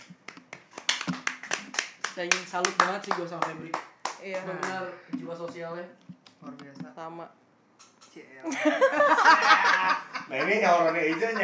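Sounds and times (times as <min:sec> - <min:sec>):
hands clapping: 0:00.0 - 0:04.8
speech: 0:02.2 - 0:07.4, 0:08.2 - 0:11.4
laughter: 0:08.5 - 0:11.4.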